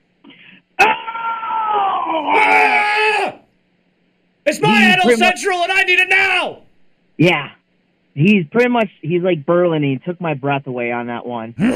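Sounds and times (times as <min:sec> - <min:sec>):
person screaming on request: 0:00.8 - 0:03.4, 0:04.6 - 0:05.4
speech: 0:04.6 - 0:06.6, 0:07.2 - 0:07.6, 0:08.2 - 0:11.7.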